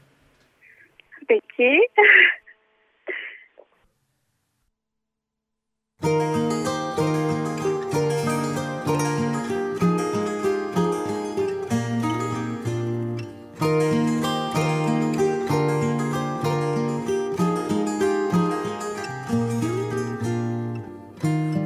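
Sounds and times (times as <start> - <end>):
speech: 1.3 - 2.4
laughter: 1.8 - 2.5
instrumental song intro with melodic sustained notes over rhythmic accompaniment: 6.0 - 21.6.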